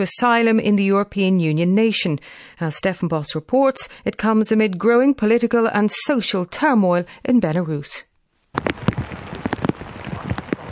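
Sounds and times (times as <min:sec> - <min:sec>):
speech: 0:00.0 - 0:08.9
rain falling at night in Tokyo: 0:08.6 - 0:10.6.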